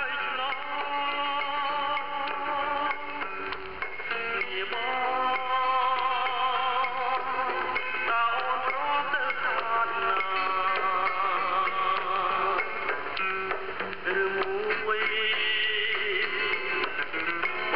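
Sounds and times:
Cambodian music with man singing with ensemble on shortwave radio: 0.0 - 17.7.

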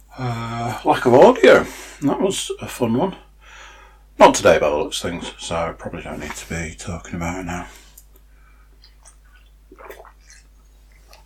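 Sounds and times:
speech: 0.2 - 3.2, 4.2 - 7.8
small mouth clicks: 7.9 - 11.2
loud wet slurping sip of water: 8.8 - 11.2.

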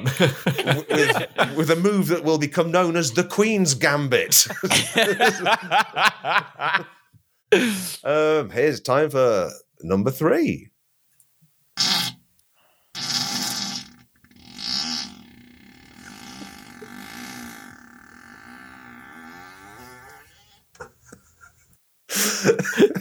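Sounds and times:
person giggling breathily: 0.0 - 1.8, 4.4 - 7.0, 20.8 - 22.9
speech: 0.0 - 10.7
long drawn-out buzzing fart: 11.8 - 12.2, 12.9 - 21.7.

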